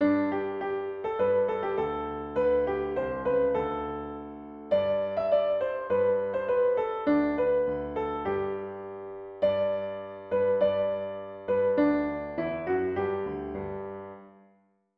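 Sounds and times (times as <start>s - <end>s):
piano: 0.0s - 14.9s.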